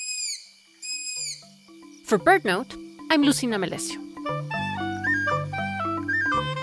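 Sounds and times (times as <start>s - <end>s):
Striped Owl giving whistled screams: 0.0s - 1.4s, 4.8s - 6.5s
speech: 2.1s - 4.5s.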